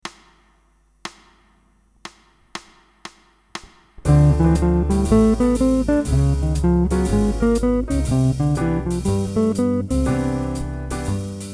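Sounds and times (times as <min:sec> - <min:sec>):
guitar scale exercise: 0:04.0 - 0:11.0.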